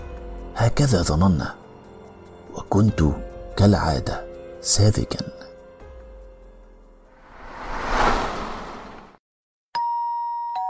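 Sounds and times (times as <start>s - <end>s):
speech: 0.6s - 1.6s, 2.7s - 5.4s
soft whoosh: 7.2s - 9.2s
doorbell chime at an apartment door: 9.8s - 10.6s.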